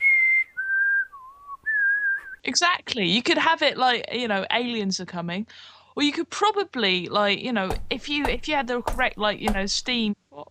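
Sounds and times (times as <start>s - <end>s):
person whistling in imitation of a retro 1950s-style kettle: 0.0s - 2.4s
speech: 2.4s - 10.5s.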